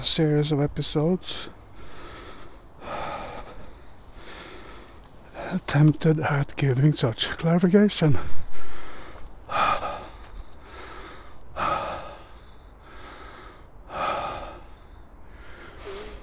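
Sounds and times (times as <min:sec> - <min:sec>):
speech: 0:00.0 - 0:01.6, 0:05.5 - 0:08.4
heavy panting breath while walking uphill: 0:01.7 - 0:05.0, 0:08.2 - 0:16.2.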